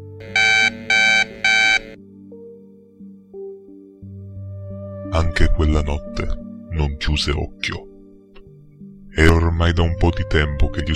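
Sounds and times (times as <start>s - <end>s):
soft musical background with sustained low tones: 0.0s - 10.9s
alarm clock beeping: 0.2s - 2.0s
speech: 5.2s - 7.9s, 9.2s - 10.9s.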